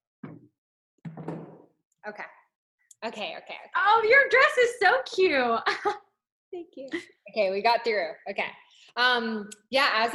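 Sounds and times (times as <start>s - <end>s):
small chair being moved, scraping and bumping: 1.1s - 1.7s
speech: 2.0s - 2.4s, 3.0s - 10.1s.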